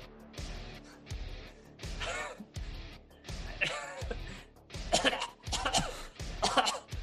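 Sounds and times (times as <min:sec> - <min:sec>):
man's harsh hacking coughs: 0:01.9 - 0:02.6, 0:03.4 - 0:07.0.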